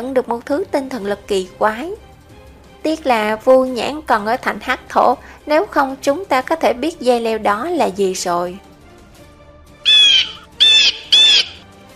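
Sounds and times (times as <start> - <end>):
speech: 0.0 - 2.0, 2.8 - 8.7
giant black-and-gold-feathered bird screeching high in the sky: 9.9 - 11.6.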